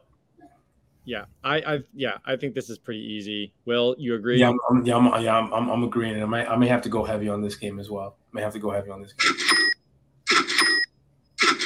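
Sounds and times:
speech: 1.0s - 9.6s
cash register ka-ching sound effect with ringing bell: 9.2s - 11.6s.

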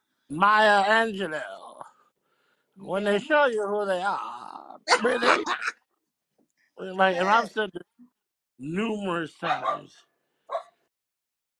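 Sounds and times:
speech: 0.3s - 1.6s, 2.8s - 5.8s, 6.8s - 8.0s, 8.6s - 10.6s
dog barking: 9.4s - 10.8s.

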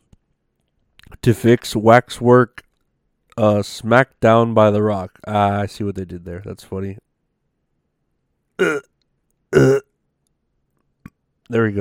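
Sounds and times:
speech: 1.2s - 2.6s, 3.4s - 7.0s, 8.6s - 8.9s, 9.5s - 9.9s, 11.5s - 11.7s
loud throaty burps: 8.6s - 10.0s.

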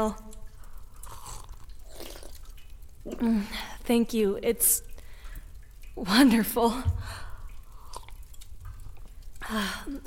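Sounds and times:
speech: 0.0s - 0.2s, 3.1s - 4.9s, 6.0s - 7.2s, 9.5s - 10.0s
broth dripping: 0.0s - 10.0s
chewing and crunching: 0.3s - 3.0s, 7.7s - 9.4s
slurping broth: 0.9s - 3.3s, 7.7s - 9.1s.

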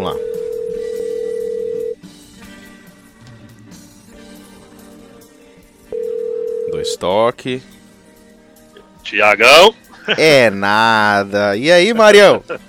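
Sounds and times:
telephone ringback tone while calling someone: 0.0s - 2.0s, 5.9s - 6.9s
speech: 7.0s - 7.8s, 9.1s - 12.6s.

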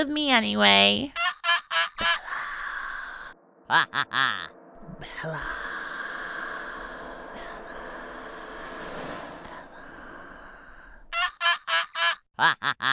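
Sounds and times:
speech: 0.0s - 1.2s, 3.7s - 5.6s, 12.4s - 12.9s
bird honking and squawking: 1.2s - 2.3s, 11.1s - 12.2s.

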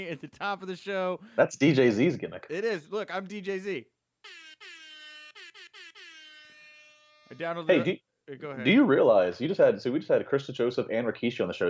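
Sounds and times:
speech: 0.0s - 4.8s, 7.3s - 11.6s
air horn sound effect: 4.2s - 7.4s.

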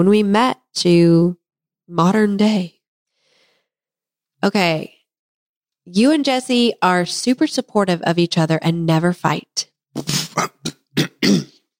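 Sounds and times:
speech: 0.0s - 2.8s, 4.4s - 5.0s, 5.8s - 11.4s
person clearing throat: 10.0s - 11.7s.

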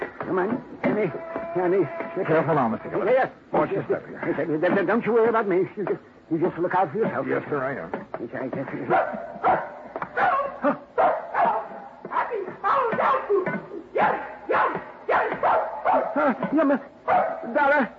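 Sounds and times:
speech: 0.3s - 9.7s
female dog barking and yipping: 8.9s - 16.4s, 17.1s - 17.6s.

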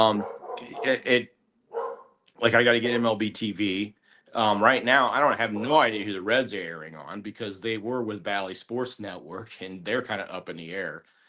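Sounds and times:
speech: 0.0s - 1.4s, 2.4s - 11.2s
dog barking: 0.1s - 1.1s, 1.7s - 2.2s.

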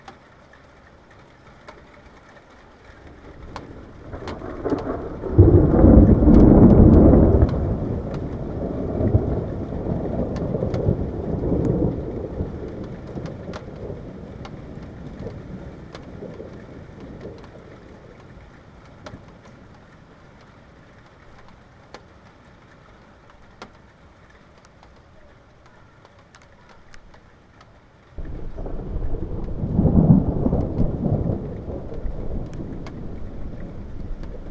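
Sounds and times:
faint rain pattering: 0.0s - 34.5s
thunder rumbling from an approaching thunderstorm: 2.9s - 19.9s, 28.2s - 34.5s.

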